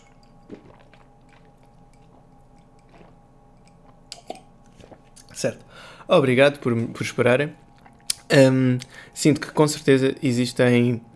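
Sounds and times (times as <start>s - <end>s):
person drinking water: 0.0s - 5.8s
low hum: 0.0s - 11.1s
swallowing: 0.4s - 5.7s
speech: 5.4s - 7.6s, 8.3s - 11.1s.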